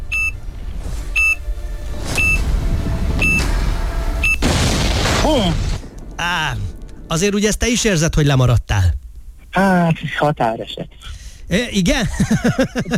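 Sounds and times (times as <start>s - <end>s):
short electronic countdown beeps: 0.0s - 0.4s, 1.2s - 1.4s, 2.2s - 2.5s, 3.2s - 3.5s, 4.2s - 4.4s
loud explosion boom with long rumbling roar: 2.0s - 7.1s
speech: 5.3s - 5.6s, 6.2s - 8.6s, 10.0s - 12.9s
laughter: 12.0s - 12.9s.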